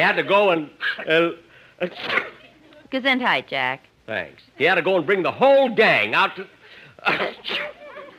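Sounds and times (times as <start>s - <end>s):
speech: 0.0s - 7.8s
sneeze: 1.8s - 2.4s, 7.0s - 7.8s.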